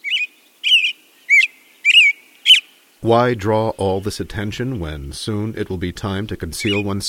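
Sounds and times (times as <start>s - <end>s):
male American robin singing evening song: 0.0s - 2.7s, 6.6s - 6.9s
speech: 3.0s - 7.0s.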